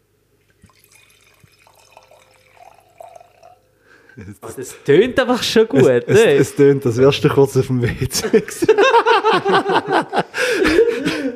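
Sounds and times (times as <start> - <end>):
wine pouring into a glass: 0.4 - 3.9
speech: 4.2 - 11.1
laughter: 5.4 - 6.8, 7.7 - 11.3.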